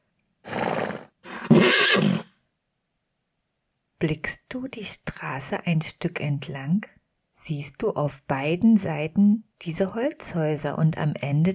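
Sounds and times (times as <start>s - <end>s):
horse whinnying: 0.4s - 2.4s
speech: 4.0s - 11.5s.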